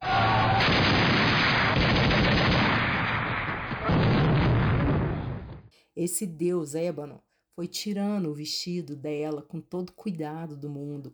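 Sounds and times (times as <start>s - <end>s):
explosions: 0.0s - 5.7s
gunfire: 0.4s - 5.7s
speech: 6.0s - 11.1s.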